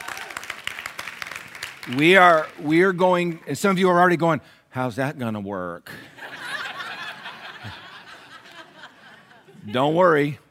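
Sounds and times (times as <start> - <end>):
church audience clapping: 0.0 - 4.0
speech: 1.8 - 6.2, 7.6 - 7.8, 9.6 - 10.4
laughter: 5.9 - 10.2.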